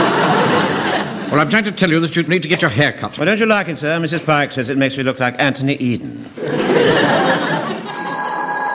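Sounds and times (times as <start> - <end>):
people laughing in a radio comedy: 0.0 - 1.8, 6.3 - 8.6
speech: 1.3 - 7.8
telephone bell ringing in a radio comedy: 7.8 - 8.7.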